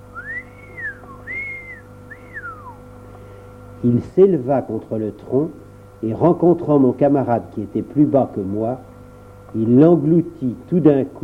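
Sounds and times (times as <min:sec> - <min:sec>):
steady low hum: 0:00.0 - 0:03.5
gliding whistles rising then sliding down in pitch: 0:00.1 - 0:02.8
speech: 0:03.8 - 0:08.9, 0:09.5 - 0:11.2.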